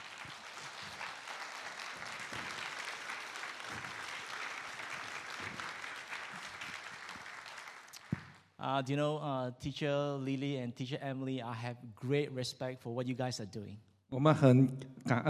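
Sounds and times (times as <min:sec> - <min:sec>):
audience applause with many hands clapping: 0:00.0 - 0:08.4
speech: 0:08.7 - 0:15.2.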